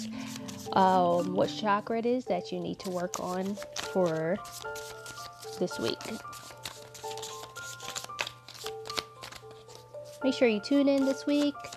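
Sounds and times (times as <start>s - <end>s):
chakra cards being pulled and shuffled: 0.0s - 1.4s, 2.6s - 10.3s, 10.9s - 11.7s
speech: 0.0s - 5.0s, 5.6s - 6.4s, 10.2s - 11.7s.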